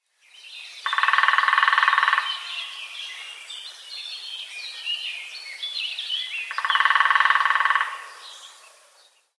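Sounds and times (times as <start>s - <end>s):
great spotted woodpecker: 0.8s - 3.0s, 6.4s - 8.8s.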